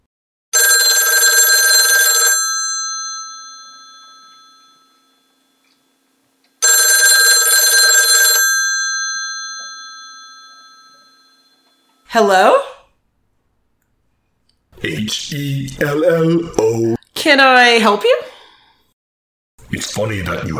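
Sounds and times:
old-style kitchen telephone bell ringing: 0:00.6 - 0:05.6, 0:06.6 - 0:12.1
speech: 0:12.2 - 0:12.7, 0:15.3 - 0:18.3, 0:19.8 - 0:20.5.

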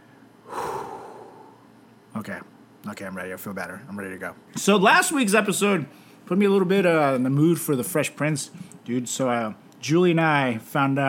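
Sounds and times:
person taking one long deep breath: 0:00.4 - 0:01.8
speech: 0:02.2 - 0:11.0.

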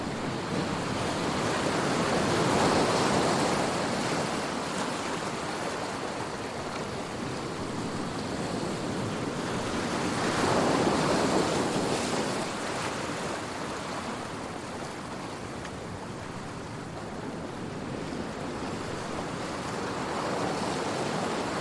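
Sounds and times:
ocean waves: 0:00.0 - 0:21.5.

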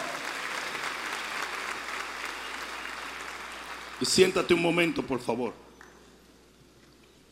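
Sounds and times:
audience applauding during a church sermon: 0:00.0 - 0:05.0
speech: 0:04.0 - 0:05.7.

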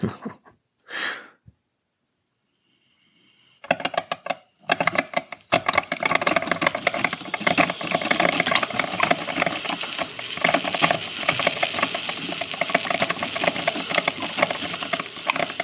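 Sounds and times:
coffee maker brewing bold roast of Arabica beans, hissing and gurgling: 0:02.5 - 0:15.6.

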